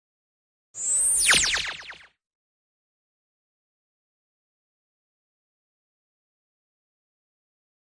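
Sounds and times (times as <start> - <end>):
long laser sound effect: 0.8 - 2.2.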